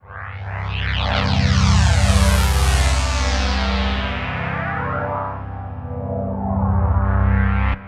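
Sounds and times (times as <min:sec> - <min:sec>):
Akai synthesizer with phase sound: 0:00.0 - 0:07.8.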